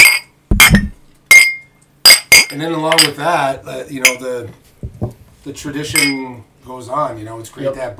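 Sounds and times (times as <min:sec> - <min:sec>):
glasses clinking in a toast at deer camp: 0:00.0 - 0:03.2, 0:04.0 - 0:04.2, 0:05.9 - 0:06.4
speech: 0:02.5 - 0:07.9.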